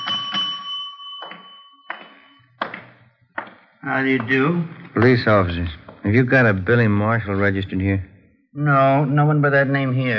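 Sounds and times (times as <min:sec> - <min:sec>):
small hotel front desk bell being struck: 0:00.0 - 0:03.6
speech: 0:03.8 - 0:10.1.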